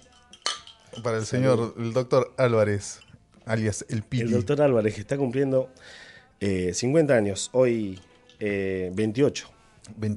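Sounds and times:
glasses clinking in a toast: 0.0s - 1.8s, 2.7s - 3.3s, 7.8s - 8.6s
speech: 1.0s - 10.1s.

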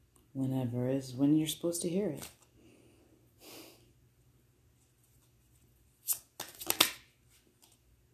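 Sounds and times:
speech: 0.4s - 2.4s
tarot cards being shuffled and pulled: 2.1s - 2.5s, 5.1s - 7.8s.

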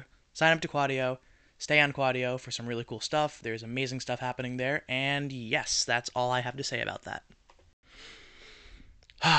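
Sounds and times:
speech: 0.4s - 7.4s, 9.2s - 9.3s
heavy out-of-breath breathing with exhales and gasps: 7.9s - 9.3s.

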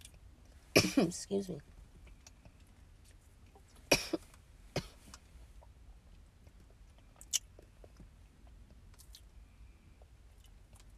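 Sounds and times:
person coughing after something went down the wrong pipe: 0.8s - 1.2s, 3.9s - 4.2s
speech: 1.0s - 1.7s.

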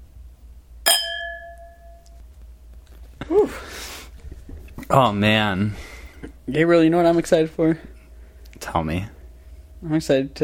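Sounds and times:
wine glasses clinking in a toast: 0.9s - 2.2s
speech: 4.9s - 5.9s, 6.5s - 7.9s, 8.7s - 9.2s, 9.8s - 10.4s.

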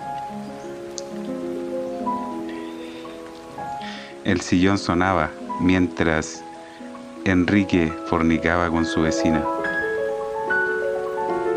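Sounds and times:
steady rain hissing softly: 0.0s - 11.5s
speech: 4.2s - 6.5s, 7.2s - 9.6s.

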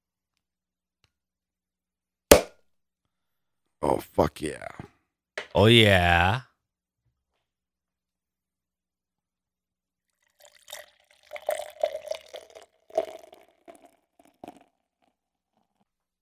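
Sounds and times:
beer bottle popping open: 2.3s - 2.5s
speech: 3.9s - 4.9s, 5.5s - 6.5s
bourbon barrel-aged Imperial Dark Ale pouring into a glass: 10.1s - 15.8s.

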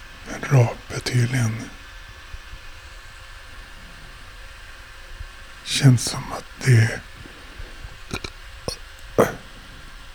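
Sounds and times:
speech: 0.5s - 1.8s, 5.8s - 7.1s
short burp with a dull low tone: 8.1s - 9.5s.

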